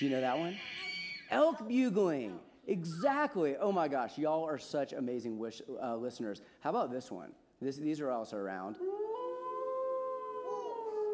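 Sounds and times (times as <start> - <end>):
speech: 0.0 - 9.0
gray wolves howling: 8.8 - 11.1.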